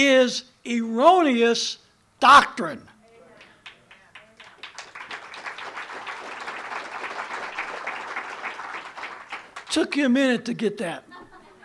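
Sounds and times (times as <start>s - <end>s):
speech: 0.0s - 2.9s, 9.8s - 11.1s
sizable audience applauding: 3.6s - 9.8s.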